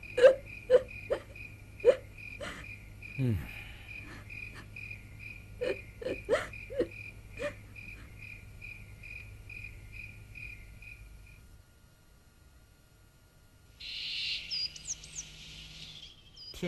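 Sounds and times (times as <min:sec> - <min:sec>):
mournful wailing cry at night: 0:00.0 - 0:02.6, 0:05.6 - 0:08.0
crickets chirring: 0:00.0 - 0:11.5, 0:13.8 - 0:16.6.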